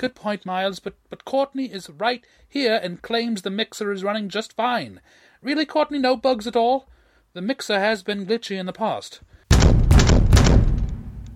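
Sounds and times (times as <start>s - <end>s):
speech: 0.0s - 9.3s
heavy knocks on a door: 9.5s - 11.0s.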